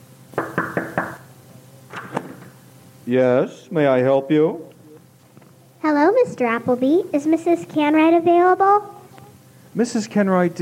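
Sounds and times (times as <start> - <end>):
knocking on a front door: 0.4 - 1.3
speech: 3.1 - 4.7, 5.8 - 9.0, 9.8 - 10.6.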